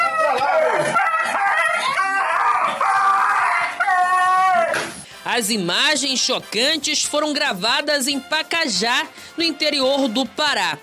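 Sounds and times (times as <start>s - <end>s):
dog yelping and howling in distress while being beaten with wood: 0.0s - 4.8s
speech: 5.4s - 10.8s.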